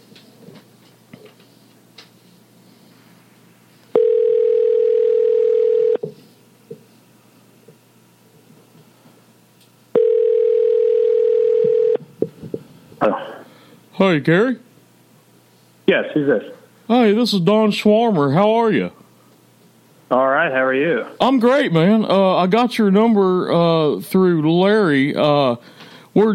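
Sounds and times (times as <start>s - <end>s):
room noise: 0.0s - 26.3s
telephone line tones while a call is being placed: 4.0s - 6.0s, 10.0s - 12.0s
speech: 14.1s - 14.6s, 15.9s - 19.0s, 20.1s - 26.3s.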